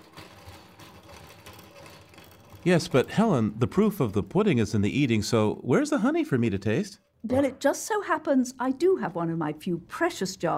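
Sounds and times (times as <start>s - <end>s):
honey extractor spinning uncapped wax honeycombs: 0.0s - 5.8s
speech: 2.6s - 10.5s.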